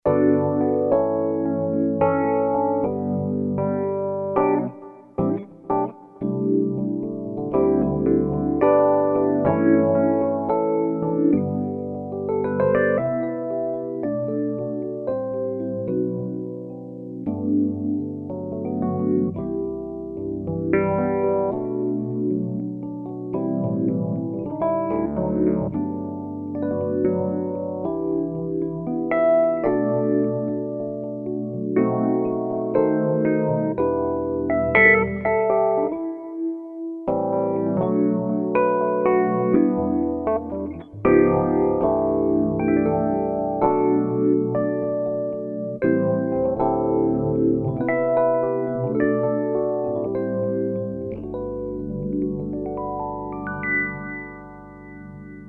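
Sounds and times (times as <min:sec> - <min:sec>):
sweet Rhodes electric piano tines with phaser: 0:00.0 - 0:55.4.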